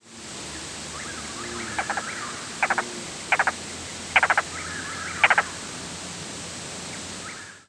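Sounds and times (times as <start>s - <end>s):
faint background bird calls: 0.5s - 5.8s, 6.9s - 7.6s
Yellow-billed cuckoo knocking call: 1.7s - 3.6s, 4.2s - 4.4s, 5.2s - 5.5s.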